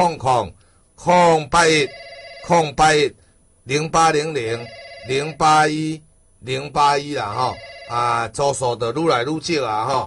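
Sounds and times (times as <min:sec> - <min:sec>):
speech: 0:00.0 - 0:10.0
telephone ringing on a radio call-in line: 0:01.7 - 0:02.8, 0:04.4 - 0:05.5, 0:07.2 - 0:08.3.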